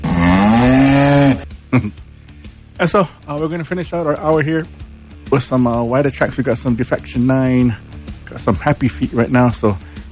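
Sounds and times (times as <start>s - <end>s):
cow mooing: 0.0s - 1.5s
speech: 1.7s - 2.0s, 2.8s - 9.9s.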